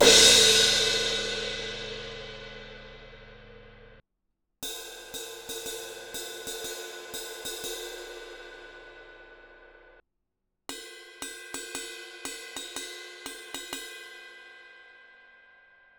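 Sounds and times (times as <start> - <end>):
18 inch crash ride cymbal bell: 0.0 - 3.9.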